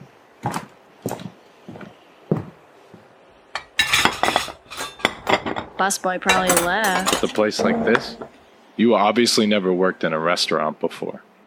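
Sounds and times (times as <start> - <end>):
dishes and cutlery clattering pushed across a table: 3.6 - 8.4
speech: 5.8 - 11.3.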